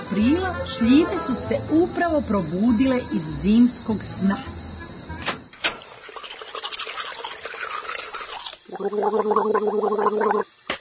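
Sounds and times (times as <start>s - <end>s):
speech: 0.1s - 4.6s, 8.8s - 10.5s
splashing and rinsing of water while washing face: 5.9s - 10.5s
steady bubbling gargling: 8.7s - 10.5s.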